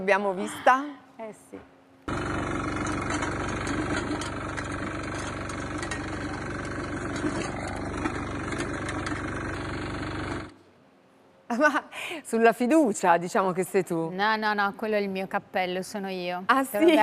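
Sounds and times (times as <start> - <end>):
speech: 0.0 - 2.3, 4.0 - 4.5, 11.5 - 17.0
walk-behind rotary tiller engine running: 2.1 - 10.6.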